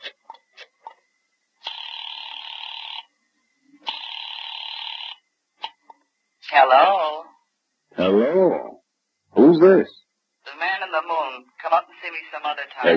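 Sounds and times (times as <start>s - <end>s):
long buzzy telephone rings over a phone line: 1.6s - 3.2s, 3.8s - 5.8s
speech: 6.6s - 7.2s, 8.0s - 8.7s, 9.5s - 10.0s, 10.9s - 12.9s.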